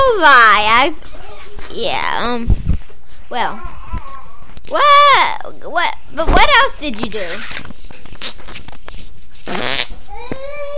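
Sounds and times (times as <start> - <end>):
speech: 0.2 - 1.1, 1.8 - 2.6, 3.3 - 3.7, 4.7 - 7.8
short squeaky tone: 7.3 - 7.8
loud buzzy fart: 9.4 - 10.1.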